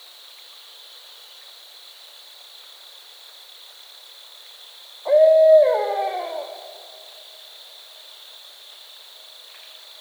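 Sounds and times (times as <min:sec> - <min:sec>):
barred owl hooting: 0:05.1 - 0:07.0.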